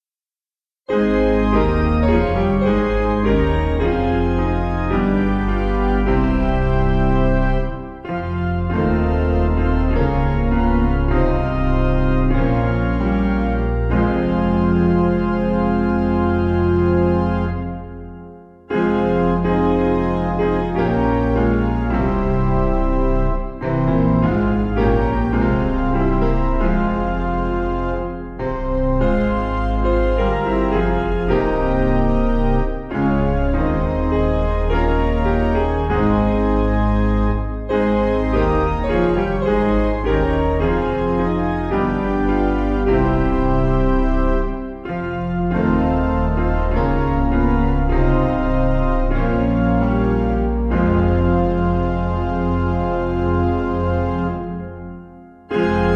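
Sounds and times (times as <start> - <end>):
piano piece in F minor: 0.9 - 55.9.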